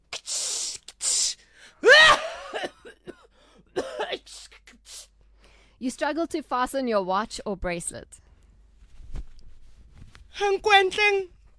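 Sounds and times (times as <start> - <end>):
voice imitating a perfume spray: 0.0 - 1.4, 4.3 - 5.2
loud coughs and sputtering gasps: 1.8 - 4.9
speech: 5.8 - 8.2, 10.4 - 11.4.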